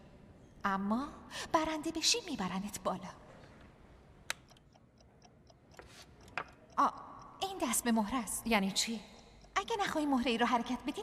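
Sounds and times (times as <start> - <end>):
speech: 0.6 - 3.2, 7.6 - 9.1, 9.7 - 11.0
chess clock ticking: 4.3 - 11.0.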